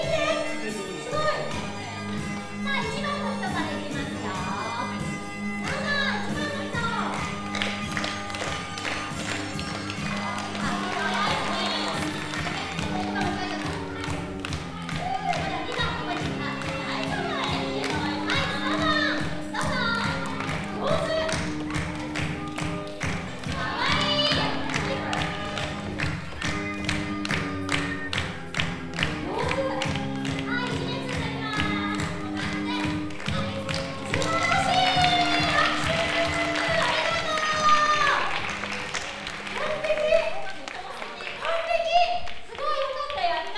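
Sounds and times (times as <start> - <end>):
scattered young voices: 0.0 - 7.3, 9.9 - 21.6, 23.4 - 25.8, 29.2 - 38.4, 39.6 - 43.5
lively noise of a crowd: 0.0 - 28.1, 28.8 - 43.5
music playing: 0.0 - 43.5.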